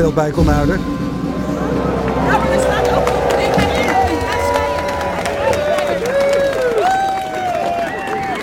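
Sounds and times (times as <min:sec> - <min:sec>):
speech: 0:00.0 - 0:01.0
large crowd applauding: 0:01.2 - 0:08.4
whistle-like tones: 0:03.0 - 0:08.4.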